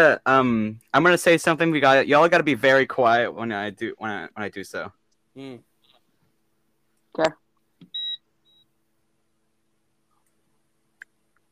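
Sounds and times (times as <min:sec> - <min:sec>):
speech: 0:00.0 - 0:05.7, 0:07.2 - 0:07.4
electronic beep: 0:07.8 - 0:08.6.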